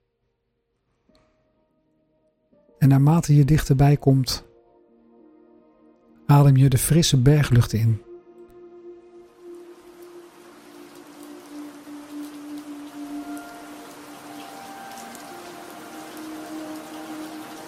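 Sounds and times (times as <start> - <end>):
speech: 2.8 - 4.5, 6.3 - 8.1
soft steady rain pattering on leaves: 9.4 - 17.6.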